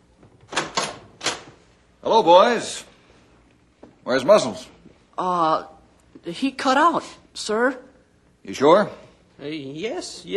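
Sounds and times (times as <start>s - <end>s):
door opening: 0.2s - 1.6s
speech: 2.0s - 2.9s, 4.1s - 10.3s.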